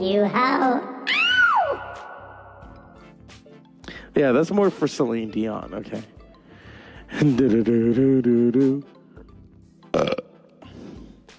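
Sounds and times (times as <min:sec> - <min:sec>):
speech: 0:00.0 - 0:00.9, 0:04.2 - 0:06.1, 0:07.2 - 0:09.0, 0:10.0 - 0:10.2
long croaky burp: 0:09.8 - 0:10.6.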